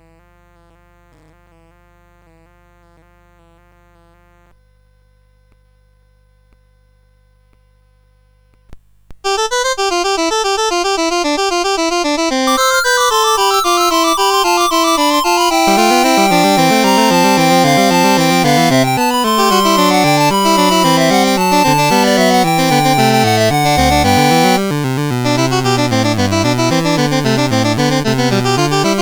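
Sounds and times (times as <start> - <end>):
fugue in C major: 9.3 - 28.9.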